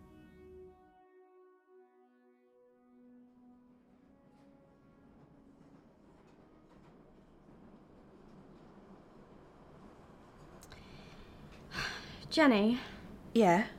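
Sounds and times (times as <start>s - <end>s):
tonal hum: 0.0s - 7.7s
train carriage rumbling: 4.1s - 13.4s
speech: 12.4s - 13.7s.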